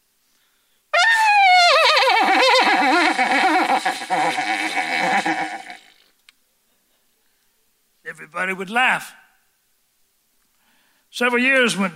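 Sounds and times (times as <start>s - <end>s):
imitated horse whinny performed as a solo: 1.0s - 6.0s
speech: 8.3s - 9.2s, 11.2s - 11.9s.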